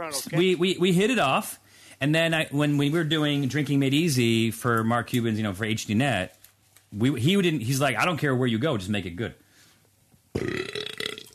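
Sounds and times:
speech: 0.0s - 9.4s, 10.3s - 10.6s
loud rumbling burp: 10.4s - 11.3s.

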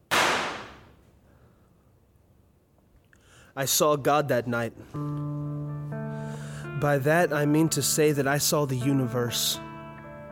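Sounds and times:
single gunshot with echo: 0.0s - 1.0s
speech: 3.6s - 6.0s, 6.8s - 9.7s.

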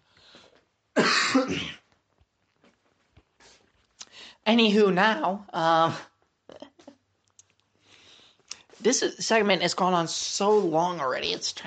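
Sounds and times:
person clearing throat with something stuck in it: 1.0s - 1.8s
speech: 1.4s - 1.8s, 4.5s - 6.1s, 8.8s - 11.6s.

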